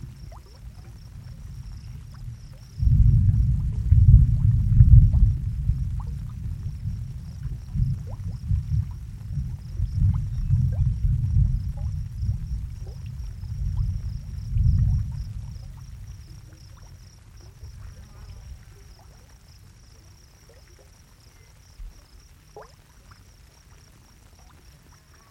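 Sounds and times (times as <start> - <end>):
deep rolling rumble of thunder: 0.0 - 19.6
crickets chirring: 0.0 - 25.2
hot pool bubbling with small pops and ticks: 0.0 - 25.2.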